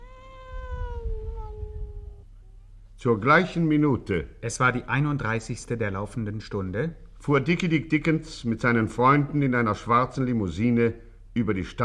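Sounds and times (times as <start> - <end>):
tomcat meowing: 0.0 - 2.3
low rumbling background: 0.0 - 7.5
speech: 3.0 - 11.8.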